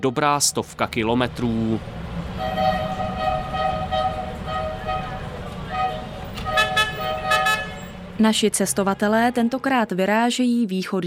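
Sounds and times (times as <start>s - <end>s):
speech: 0.0s - 2.6s, 8.2s - 11.0s
low rumbling engine noise of a traffic jam: 0.0s - 9.7s
vehicle horns honking in a traffic jam: 0.7s - 8.4s.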